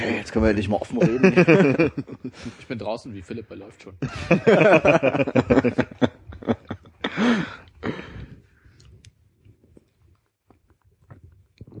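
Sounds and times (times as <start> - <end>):
speech: 0.0 - 6.2
laughter: 0.9 - 2.7, 4.0 - 7.6
chewing nuts with crisp crunching bites: 9.7 - 11.7.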